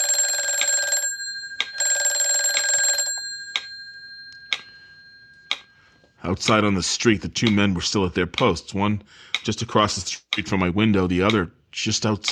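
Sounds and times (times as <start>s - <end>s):
telephone ringing in long buzzing bell bursts: 0.0s - 6.2s
speech: 6.2s - 12.2s.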